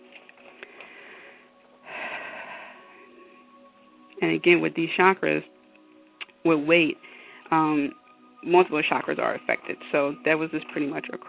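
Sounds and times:
deep breath during a guided meditation: 0.6 - 3.4, 7.0 - 7.5
speech: 4.2 - 5.5, 6.4 - 11.2.

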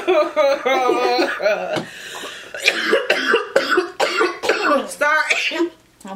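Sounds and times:
laughter: 0.0 - 1.8
loud coughs: 2.6 - 5.7.

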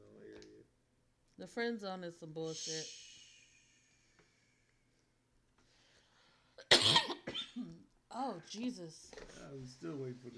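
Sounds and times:
speech: 1.4 - 3.1, 8.5 - 10.3
woman coughing: 6.6 - 7.8.

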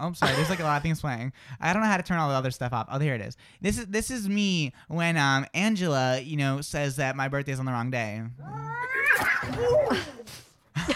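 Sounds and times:
speech: 0.0 - 10.9
strangled cat yowl: 8.4 - 10.3.

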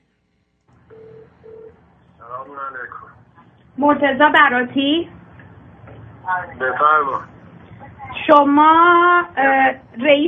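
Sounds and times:
electronic telephone tones beeping over a phone line: 0.8 - 1.8
speech: 3.8 - 5.2, 6.3 - 7.3, 8.2 - 10.2.

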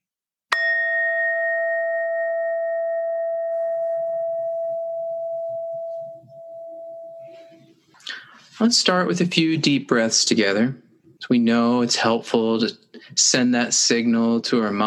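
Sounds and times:
meditation bell ringing: 0.5 - 7.8
speech: 8.6 - 14.8.

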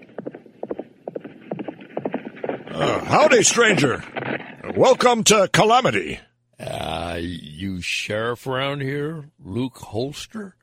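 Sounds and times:
horse hooves clip-clopping on a Western frontier town street: 0.0 - 5.2
speech: 2.8 - 6.3, 7.2 - 10.6.

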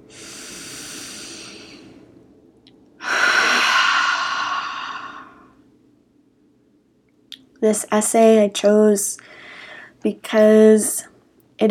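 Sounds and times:
deep breaths during guided breathing: 0.0 - 2.1, 3.0 - 5.6, 9.2 - 10.0
speech: 7.6 - 9.4, 10.0 - 11.6.

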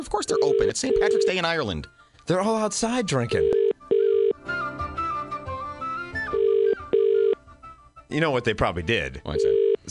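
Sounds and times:
speech: 0.0 - 3.7, 8.1 - 9.8
music: 0.0 - 9.8
unanswered phone line ringing while calling a pub in Temple Bar Dublin Ireland: 0.3 - 1.5, 3.4 - 4.4, 6.3 - 7.4, 9.3 - 9.8.

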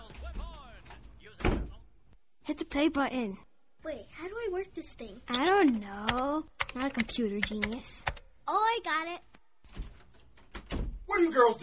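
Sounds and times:
door slamming shut: 0.0 - 1.8, 9.7 - 11.1
speech: 2.5 - 9.3, 11.1 - 11.6.

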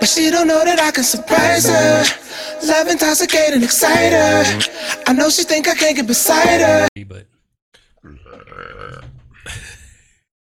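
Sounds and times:
speech: 0.0 - 7.3
person burping: 7.8 - 10.0.

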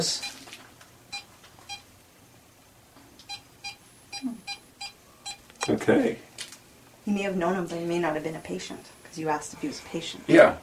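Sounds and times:
speech: 0.0 - 0.3, 5.6 - 6.3, 7.1 - 10.6
short high electronic beeps: 3.3 - 5.8.

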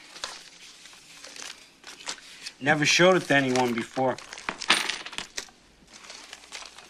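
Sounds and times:
speech: 2.6 - 4.3
coins dropping and clinking together: 3.3 - 5.5.

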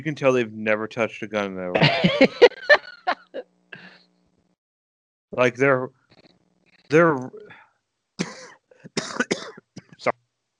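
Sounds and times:
speech: 0.0 - 2.8, 5.3 - 6.0, 6.9 - 7.4
laughter: 1.7 - 3.4
person coughing: 1.8 - 2.6, 8.2 - 10.1.

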